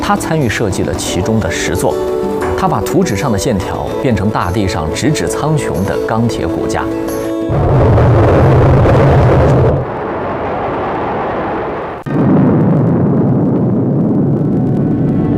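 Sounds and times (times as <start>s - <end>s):
speech: 0.1s - 8.2s
explosion of China's first atomic bomb: 7.5s - 15.3s.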